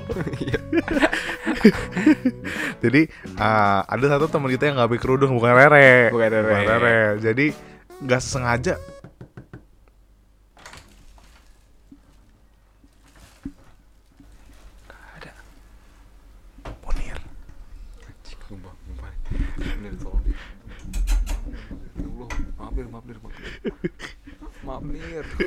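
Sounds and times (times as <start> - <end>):
laughter: 0.0 - 2.9, 23.3 - 25.4
speech: 0.1 - 8.9
knocking on a door: 9.0 - 9.7
faint rustling: 10.6 - 25.4.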